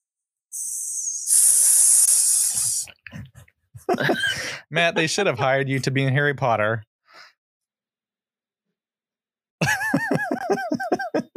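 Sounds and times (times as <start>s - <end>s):
person imitating a snake with a loud drawn-out hiss: 0.6s - 3.0s
person's short breathy laughs: 3.1s - 4.7s, 9.6s - 11.3s
speech: 4.0s - 6.9s, 11.1s - 11.3s.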